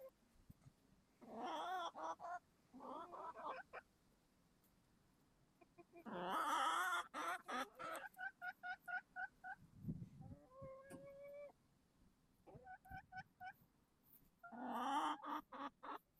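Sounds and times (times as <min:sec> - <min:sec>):
chicken cackling and squawking: 0:01.2 - 0:03.9, 0:05.6 - 0:11.6, 0:12.4 - 0:13.6, 0:14.2 - 0:16.1.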